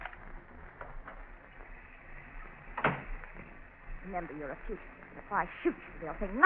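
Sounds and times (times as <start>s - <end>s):
hiss: 0.0s - 6.4s
garage door thud or creak: 2.8s - 3.5s
speech: 4.1s - 6.4s.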